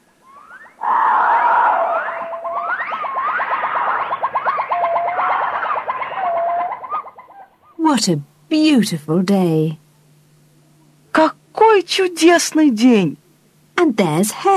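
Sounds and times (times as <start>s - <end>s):
monkeys in a forest whooping: 0.1s - 7.8s
speech: 7.9s - 9.8s, 11.8s - 13.2s, 13.9s - 14.5s.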